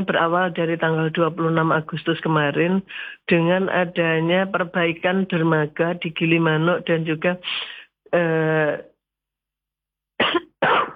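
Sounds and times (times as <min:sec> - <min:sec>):
speech: 0:00.0 - 0:08.9
person coughing: 0:10.2 - 0:10.9.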